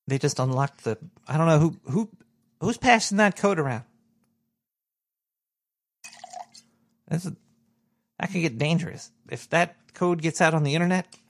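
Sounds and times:
speech: 0.1 - 3.9, 7.1 - 7.4, 8.2 - 11.2
drink pouring into a glass: 6.0 - 6.7.

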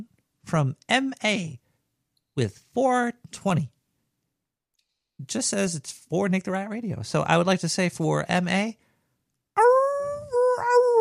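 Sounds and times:
speech: 0.5 - 1.6, 2.4 - 3.8, 5.2 - 8.8
person imitating a dog's howl: 9.6 - 10.9.

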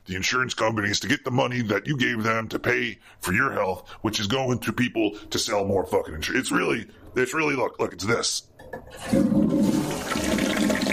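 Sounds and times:
speech: 0.1 - 10.2
toilet flushing: 8.6 - 10.9.

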